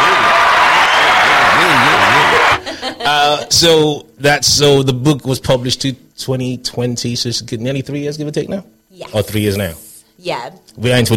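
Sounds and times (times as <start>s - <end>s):
applause: 0.0s - 2.6s
people laughing: 1.2s - 3.7s
speech: 3.1s - 11.1s.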